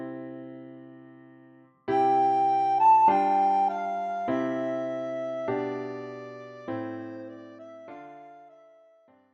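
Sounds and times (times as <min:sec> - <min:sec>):
soprano recorder playing a Christmas song: 0:01.9 - 0:09.1.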